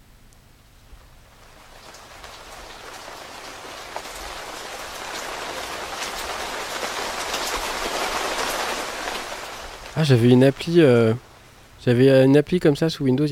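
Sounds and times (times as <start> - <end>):
steady rain pouring: 0.4 - 13.3
rain drops pattering on a surface: 1.4 - 11.1
speech: 10.0 - 13.3.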